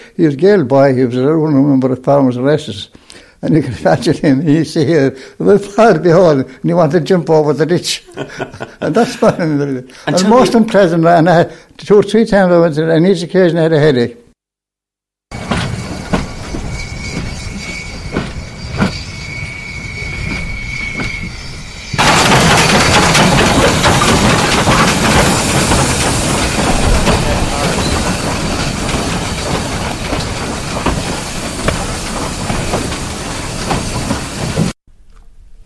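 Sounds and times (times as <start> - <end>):
speech: 0.2 - 14.2
laughter: 7.9 - 10.7
train wagons loaded with turf rolling on railway tracks: 15.3 - 34.8
hissing roar: 15.4 - 34.6.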